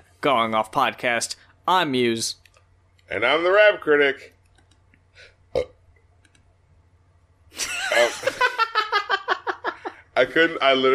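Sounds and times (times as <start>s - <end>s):
speech: 0.2s - 2.4s, 3.1s - 4.3s, 10.2s - 10.9s
brief click: 4.4s - 5.0s, 6.2s - 6.5s
loud drawn-out burp: 5.5s - 5.8s
laughter: 7.6s - 10.0s.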